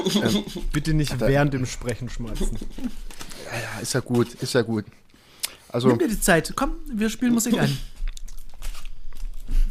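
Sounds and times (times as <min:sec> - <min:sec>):
laughter: 0:00.0 - 0:00.7, 0:02.2 - 0:03.0
speech: 0:00.0 - 0:05.0, 0:05.7 - 0:08.0
chewing and crunching on cake: 0:07.6 - 0:09.6.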